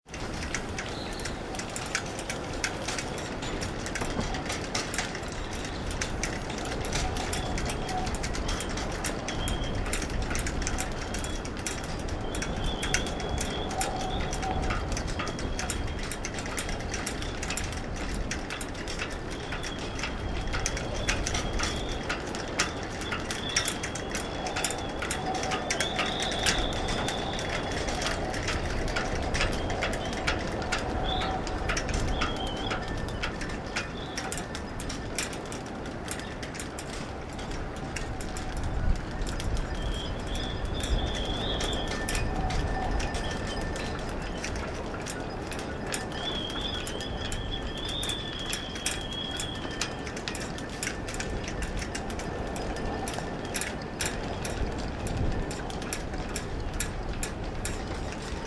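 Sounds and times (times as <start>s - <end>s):
rain: 0.1s - 58.4s.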